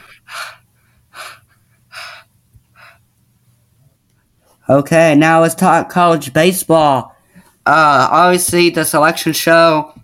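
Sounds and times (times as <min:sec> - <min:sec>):
person gasping heavily after being out of breath: 0:00.0 - 0:03.0
speech: 0:04.7 - 0:07.1, 0:07.7 - 0:10.0.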